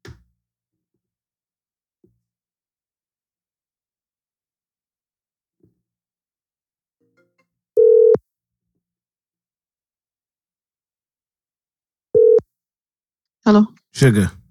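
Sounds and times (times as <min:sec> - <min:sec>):
phone line ringing with a steady electronic tone: 0:07.8 - 0:08.2, 0:12.2 - 0:12.4
speech: 0:13.5 - 0:14.4.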